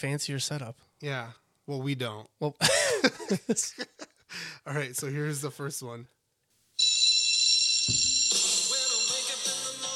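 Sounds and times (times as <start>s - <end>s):
speech: 0.0s - 6.2s
electric bell ringing played from a laptop held up to a microphone: 6.8s - 9.9s.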